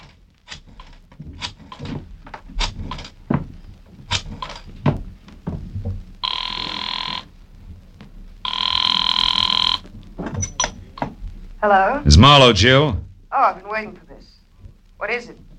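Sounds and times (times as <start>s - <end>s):
sharp knocks and clatters: 0.0s - 6.2s, 9.8s - 11.4s
telephone bell ringing: 6.2s - 7.3s, 8.5s - 9.8s
speech: 11.6s - 14.0s, 15.0s - 15.5s.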